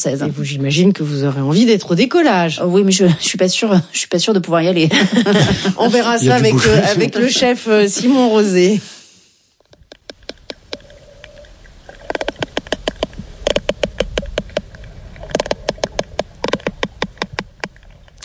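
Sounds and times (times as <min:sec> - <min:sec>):
speech: 0:00.0 - 0:09.0
low steady hiss: 0:00.0 - 0:18.2
laughter: 0:04.9 - 0:08.2
sperm whale clicks: 0:09.6 - 0:18.2.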